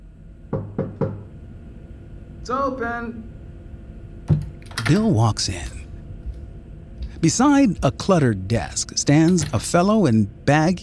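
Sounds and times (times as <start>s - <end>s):
faint room hum: 0.0s - 10.8s
firm knocks on a wooden office door: 0.5s - 1.3s
speech: 2.4s - 3.4s, 4.9s - 5.8s, 7.2s - 10.8s.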